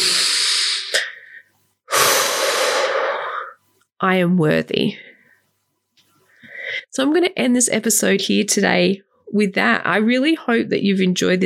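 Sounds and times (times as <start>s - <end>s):
hissing exhale: 0.0s - 1.2s, 1.9s - 3.6s
deep inhale: 0.0s - 3.6s
speech: 4.0s - 5.2s, 7.0s - 11.4s.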